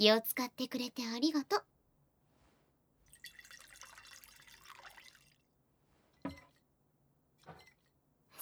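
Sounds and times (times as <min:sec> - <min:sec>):
speech: 0:00.0 - 0:01.7
drink pouring into a glass: 0:03.1 - 0:05.5.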